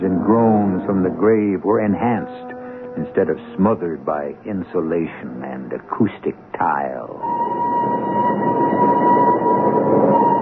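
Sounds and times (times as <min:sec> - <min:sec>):
train engine and wheels rumbling: 0:00.0 - 0:10.3
speech: 0:00.3 - 0:07.6
train whistle: 0:02.0 - 0:03.9, 0:07.2 - 0:10.3.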